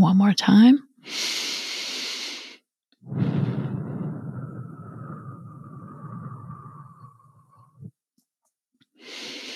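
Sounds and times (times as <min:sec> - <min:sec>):
speech: 0:00.3 - 0:01.4
slow deliberate breathing in a relaxation exercise: 0:01.0 - 0:08.0, 0:09.0 - 0:09.5.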